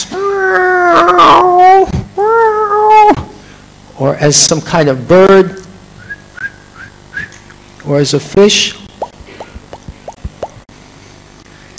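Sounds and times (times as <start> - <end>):
dog howling whines: 0.1 - 3.2
speech: 4.2 - 5.5, 8.0 - 8.8.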